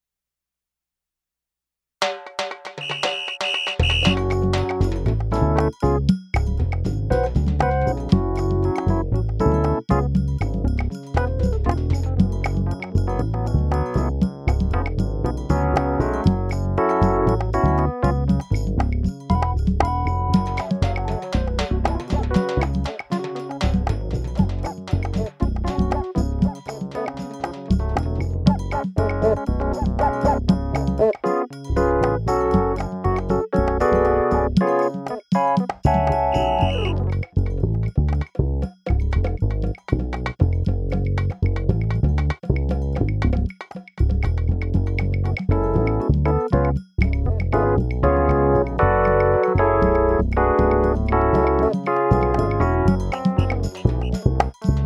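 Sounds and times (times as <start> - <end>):
Kontakt Latin drum machine based on the Yamaha RX21L: 2.0 - 54.8.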